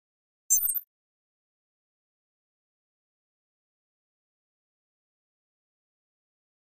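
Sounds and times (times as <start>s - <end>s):
electronic flash beep: 0.5s - 0.8s.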